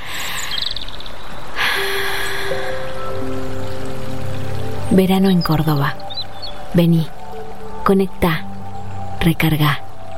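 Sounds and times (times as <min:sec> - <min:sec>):
flowing stream water: 0:00.0 - 0:10.1
speech: 0:04.9 - 0:06.1, 0:06.7 - 0:07.2, 0:07.9 - 0:08.5, 0:09.2 - 0:09.8.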